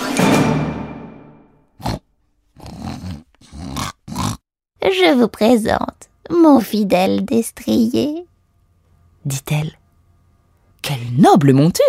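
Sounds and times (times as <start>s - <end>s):
loud harsh blast: 0.0s - 1.5s
large shaggy pig grunting and snorting: 1.8s - 4.4s
speech: 4.9s - 8.2s, 9.2s - 9.8s, 10.8s - 11.8s.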